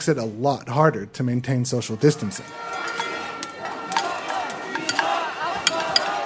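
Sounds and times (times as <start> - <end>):
speech: 0.0 - 2.8
protest crowd murmuring at Habima Square in Tel Aviv at night: 2.2 - 6.2.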